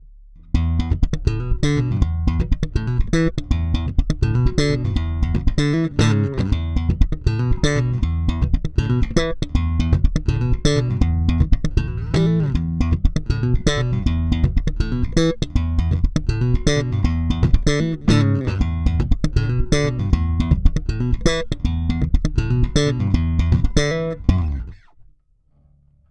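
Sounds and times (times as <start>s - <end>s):
slap bass: 0.0s - 25.0s.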